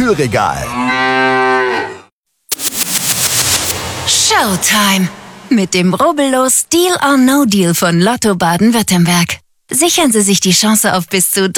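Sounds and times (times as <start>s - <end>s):
speech: 0.1s - 1.1s, 4.3s - 11.5s
cow mooing: 0.7s - 2.1s.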